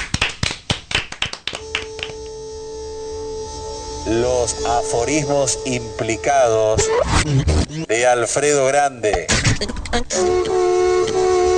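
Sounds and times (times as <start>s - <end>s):
hands clapping: 0.0s - 2.3s
steady sustained tone: 1.6s - 7.3s, 10.1s - 11.5s
speech: 4.1s - 10.7s.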